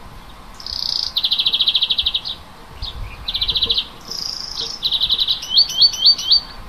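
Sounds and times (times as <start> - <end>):
native forest bird singing trills and rattling phrases: 0.2 - 6.6.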